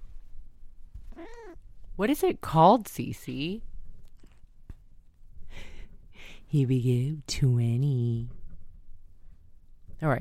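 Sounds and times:
cat meowing with a warbling alien-like pitch: 1.1 - 1.6
speech: 1.2 - 3.7, 6.5 - 8.4, 10.0 - 10.1.

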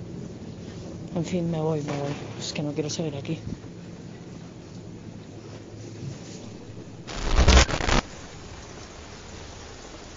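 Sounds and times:
speech: 1.2 - 3.7
heavy rain: 7.1 - 10.1.

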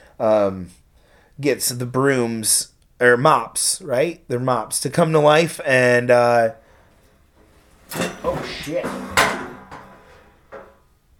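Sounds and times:
speech: 0.2 - 0.8, 1.4 - 6.6, 7.9 - 9.0
metal folding chair bumped and nearly tipping over: 7.9 - 10.8.

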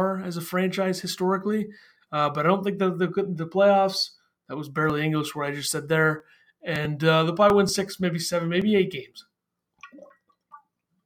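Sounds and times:
speech: 0.0 - 9.3
person drinking water with wet gulping and slurping: 9.7 - 11.0.

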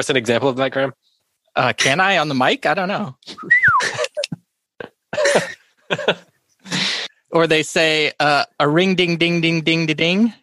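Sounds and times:
speech: 0.0 - 4.0, 5.1 - 10.4
person whistling imitating a fox call: 3.3 - 3.9.

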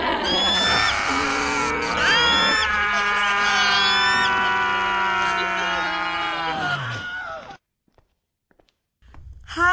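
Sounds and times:
several people screaming together in a group yell: 0.5 - 7.6.

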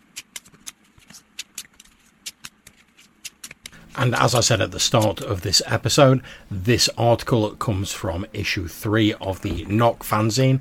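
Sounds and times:
deck of playing cards being shuffled: 0.0 - 5.5
speech: 4.0 - 10.6.

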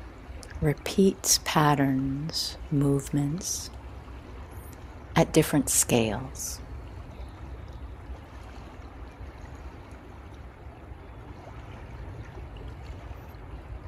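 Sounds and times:
flowing water of merging rivers: 0.0 - 13.8
speech: 0.6 - 3.8, 5.2 - 6.6.

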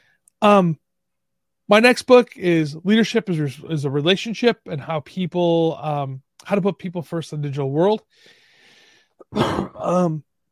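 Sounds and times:
speech: 0.4 - 0.8, 1.7 - 8.4, 9.3 - 10.3
cough with rough throat-clearing quality: 9.2 - 10.1.

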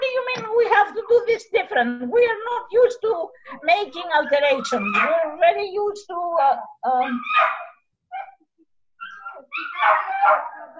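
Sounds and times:
speech: 1.4 - 7.7, 9.6 - 10.7
dogs barking: 4.1 - 5.2, 7.2 - 8.4, 9.0 - 10.7
dogs whimpering and whining: 4.1 - 5.2, 7.1 - 10.7.

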